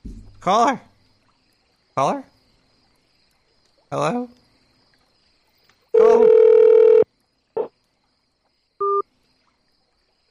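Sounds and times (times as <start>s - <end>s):
speech: 0.4s - 0.9s, 2.0s - 2.3s, 3.9s - 4.4s
loud steady electronic phone-line tone: 6.0s - 7.0s, 8.8s - 9.0s.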